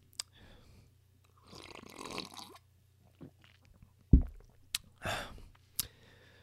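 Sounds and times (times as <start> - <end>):
slurping sip of plain coffee from a home coffee maker: 1.3 - 2.6
sharp low thump: 4.1 - 4.5.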